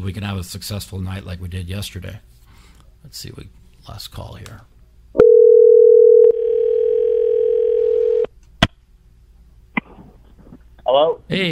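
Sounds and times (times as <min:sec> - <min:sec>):
speech: 0:00.0 - 0:02.4, 0:03.0 - 0:04.7, 0:10.9 - 0:11.5
telephone dial tone: 0:05.2 - 0:08.3.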